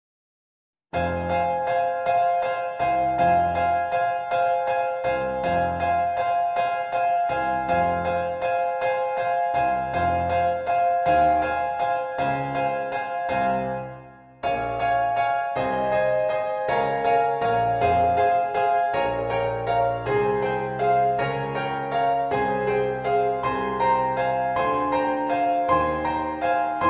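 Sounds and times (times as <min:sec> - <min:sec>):
piano accompaniment for SATB choir: 0:01.0 - 0:26.8.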